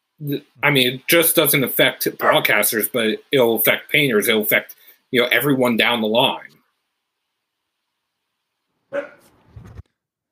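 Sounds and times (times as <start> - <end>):
speech: 0.2 - 6.6, 8.9 - 9.1
puppy barking: 2.2 - 2.5, 8.9 - 9.3
puppy yelping whine: 8.9 - 9.4.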